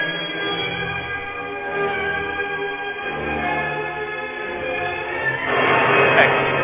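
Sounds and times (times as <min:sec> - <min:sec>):
stormy orchestral passage: 0:00.0 - 0:06.6.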